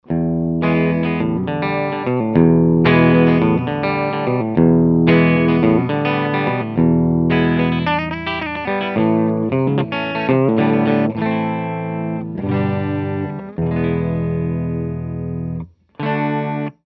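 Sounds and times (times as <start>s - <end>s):
clean single coil guitar: 0.0s - 16.8s.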